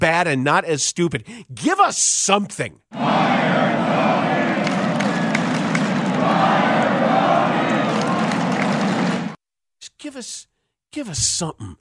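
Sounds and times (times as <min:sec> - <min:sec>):
speech: 0:00.0 - 0:03.8, 0:10.0 - 0:11.8
large stadium crowd cheering and yelling: 0:03.0 - 0:09.4
people clapping in a stadium crowd: 0:03.0 - 0:09.4.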